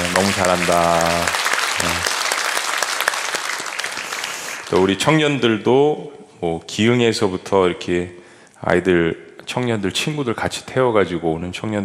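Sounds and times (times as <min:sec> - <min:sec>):
audience applauding: 0:00.0 - 0:05.1
speech: 0:00.4 - 0:01.4, 0:04.7 - 0:11.8.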